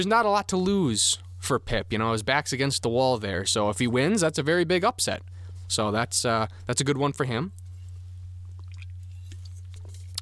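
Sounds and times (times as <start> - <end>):
speech: 0.0 - 7.6
steady low electrical hum: 0.0 - 10.2
wet mouth clicks and slurping from sipping an iced tea-lemonade drink: 8.4 - 10.2.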